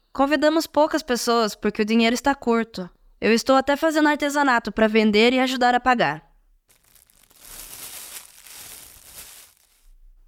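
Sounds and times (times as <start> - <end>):
speech: 0.2 - 6.3
plastic bag rustling as it is pulled from a purse: 6.7 - 10.0.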